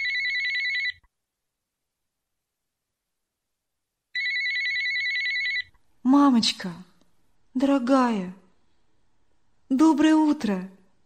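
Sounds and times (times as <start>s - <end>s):
mobile phone ringtone warbling electronic melody: 0.0s - 1.0s, 4.2s - 5.7s
speech: 6.1s - 6.9s, 7.6s - 8.4s, 9.7s - 10.8s.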